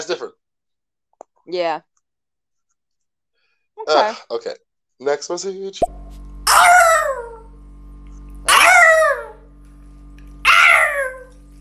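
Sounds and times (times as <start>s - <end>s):
speech: 0.0s - 0.4s, 1.5s - 1.9s, 3.8s - 6.1s
steady low hum: 5.8s - 11.6s
harsh rasping fox screams during mating: 6.5s - 7.5s, 8.5s - 9.4s, 10.4s - 11.3s.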